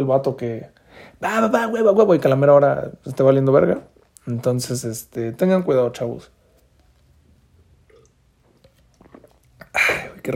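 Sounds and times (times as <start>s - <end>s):
speech: 0.0s - 6.4s
person drinking water and swallowing: 7.6s - 10.3s.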